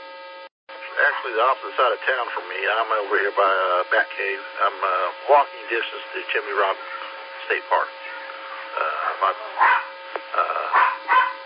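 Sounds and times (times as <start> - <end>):
speech: 1.0 - 8.0, 8.8 - 11.0
dog yipping while playing with a toy: 9.6 - 9.9, 10.7 - 11.4.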